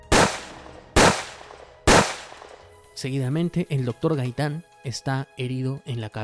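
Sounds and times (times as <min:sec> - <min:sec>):
gunshots with lingering echo: 0:00.0 - 0:02.7
speech: 0:03.0 - 0:06.2.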